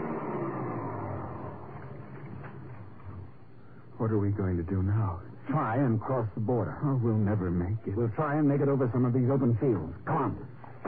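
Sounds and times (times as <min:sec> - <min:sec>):
small car engine rumbling: 0:00.0 - 0:03.9
speech: 0:04.0 - 0:10.5.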